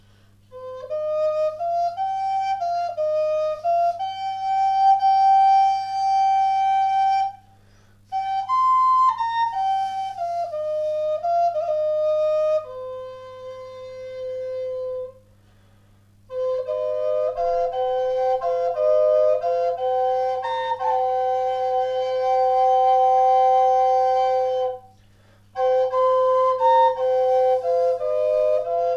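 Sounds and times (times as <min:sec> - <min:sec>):
high C Native American double flute of chestnut wood: 0:00.0 - 0:28.9.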